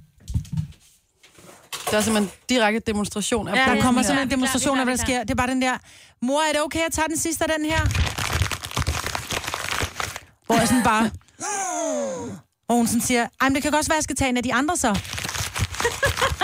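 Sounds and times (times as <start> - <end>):
speech: 1.9 - 8.1, 10.5 - 15.2
child's plastic candy bag crinkling in a cinema: 7.8 - 10.5, 14.8 - 16.4
laughter: 15.8 - 16.4.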